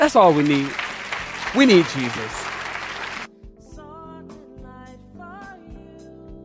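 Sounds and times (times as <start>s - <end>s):
speech: 0.0s - 0.8s, 1.5s - 2.4s
audience clapping at a preacher's request: 0.0s - 3.3s
soft sustained organ-like music: 0.0s - 3.3s.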